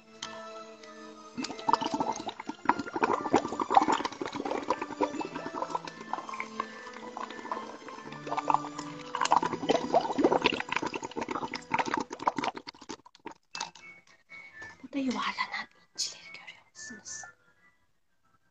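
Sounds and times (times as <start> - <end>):
speech: 1.4 - 1.8
underwater bubbling and gurgling seawater: 1.4 - 13.7.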